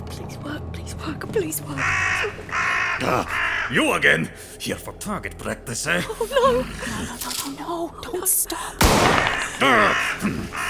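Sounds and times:
speech: 0.5s - 10.6s
crow cawing: 1.6s - 7.7s, 8.8s - 10.6s.

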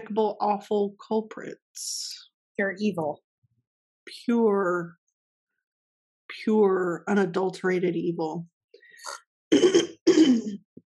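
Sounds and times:
speech: 0.0s - 3.2s, 4.1s - 5.0s, 6.3s - 9.9s
person clearing throat: 9.5s - 10.6s.

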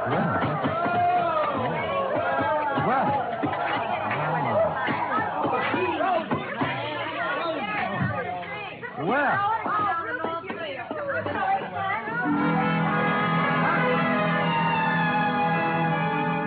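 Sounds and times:
group of skiers chattering with overlapping voices: 0.0s - 16.4s
steady sustained musical tone: 12.2s - 16.4s.

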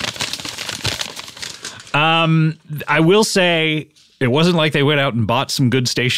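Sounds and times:
notebook paper being crinkled against a microphone: 0.0s - 2.0s
speech: 2.2s - 6.1s.

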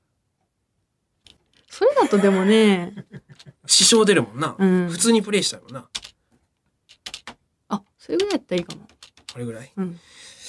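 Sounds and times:
laughter: 1.8s - 4.2s
speech: 1.9s - 6.0s, 7.7s - 10.4s
computer keyboard keys being pressed: 5.1s - 6.2s, 6.9s - 7.4s, 8.1s - 9.5s.

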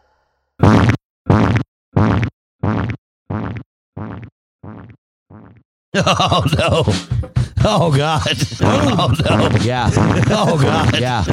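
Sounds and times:
short buzzy human fart noises recorded into a microphone: 0.6s - 5.6s, 9.5s - 11.3s
laughter: 6.0s - 11.3s
speech: 6.0s - 11.3s.

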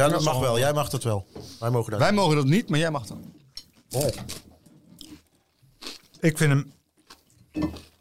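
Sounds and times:
speech: 0.0s - 3.3s, 3.9s - 4.5s, 6.2s - 6.8s, 7.6s - 7.9s
wet chewing into a microphone: 3.4s - 8.0s.

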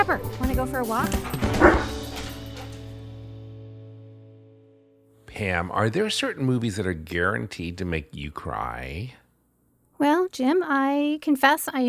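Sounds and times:
speech: 0.0s - 2.0s, 5.4s - 9.2s, 10.0s - 11.8s
dog barking: 1.2s - 2.7s.

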